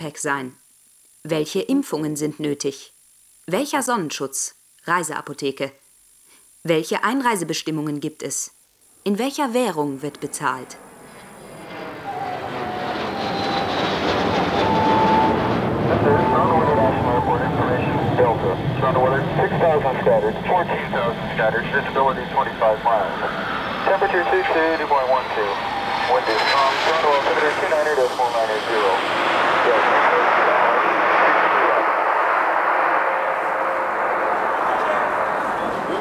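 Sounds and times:
speech: 0.0s - 0.6s, 1.2s - 5.8s, 6.6s - 10.9s, 18.8s - 30.7s
airliner landing at Cairo airport in Egypt: 9.8s - 36.0s.

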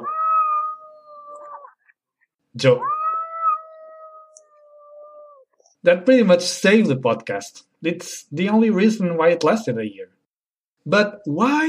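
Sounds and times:
cat meowing: 0.0s - 1.8s, 2.8s - 5.5s
speech: 2.6s - 3.0s, 5.8s - 10.2s, 10.8s - 11.6s.

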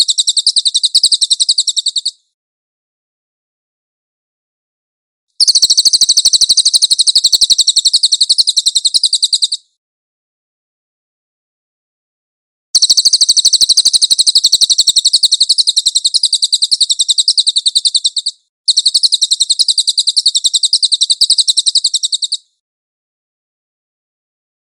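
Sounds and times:
Cililin bird giving a high chattering trill: 0.0s - 2.2s, 5.4s - 9.7s, 12.8s - 22.5s.

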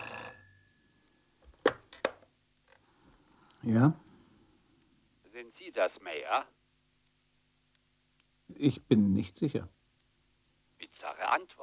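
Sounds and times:
telephone ringing: 0.0s - 1.0s
speech: 3.6s - 4.0s, 5.6s - 6.6s, 8.6s - 9.8s.

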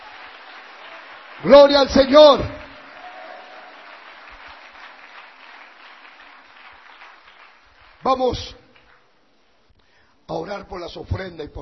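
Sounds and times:
congregation applauding at a church service: 0.0s - 9.2s
speech: 1.4s - 2.6s, 8.0s - 8.6s, 10.3s - 11.6s.

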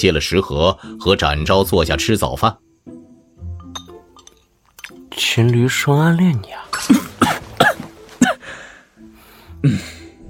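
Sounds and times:
speech: 0.0s - 2.6s, 5.2s - 7.0s, 9.6s - 9.9s
person coughing after choking on soy milk: 6.7s - 8.4s
quiet breathing: 8.4s - 10.2s.

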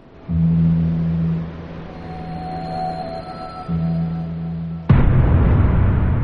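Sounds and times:
low steady droning hum: 0.0s - 6.2s
loud explosion inside a vehicle during a snowstorm: 4.9s - 6.2s.

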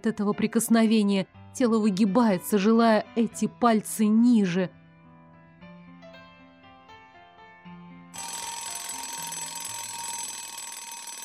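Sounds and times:
speech: 0.0s - 4.8s
alarm clock ringing beside someone in bed: 8.2s - 11.2s
stepped electronic melody tones of an alarm clock: 8.2s - 11.2s.

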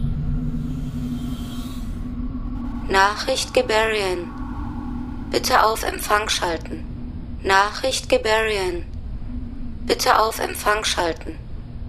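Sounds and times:
computer activating electronic drone in a science-fiction radio drama: 0.0s - 11.7s
speech: 2.9s - 4.4s, 5.3s - 8.9s, 9.8s - 11.4s.

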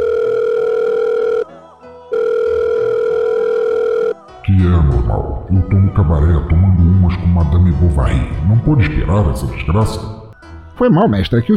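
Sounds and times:
ringing tone of an outgoing Telegram call: 0.0s - 4.3s
speech: 4.8s - 10.2s, 10.8s - 11.5s.

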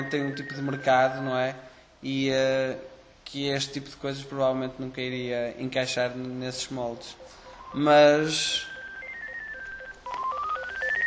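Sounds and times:
mobile phone ringtone of electronic beeping tones stepping upward: 0.0s - 1.2s, 6.5s - 11.0s
speech: 0.0s - 8.7s.

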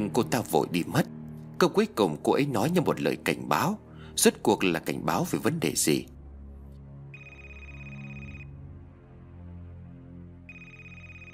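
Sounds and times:
speech: 0.0s - 6.1s
quiet low drone: 0.0s - 11.3s
telephone ringing with a bright electronic trill: 7.2s - 8.6s, 10.5s - 11.3s.

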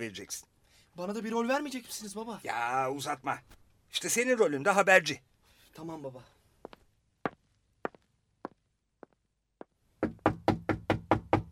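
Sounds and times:
speech: 0.0s - 6.4s
knocking on a door: 10.0s - 11.5s.

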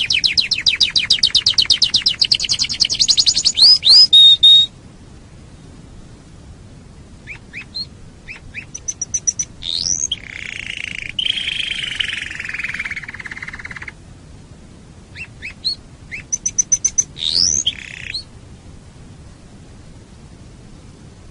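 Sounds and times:
canary rising chirps and quick high ticking notes: 0.0s - 4.7s, 7.3s - 13.9s, 15.2s - 18.3s.

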